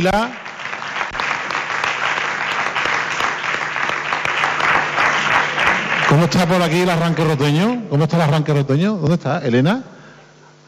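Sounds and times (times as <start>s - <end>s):
speech: 0.0s - 0.4s, 6.1s - 9.9s
crowd applause: 0.0s - 7.8s.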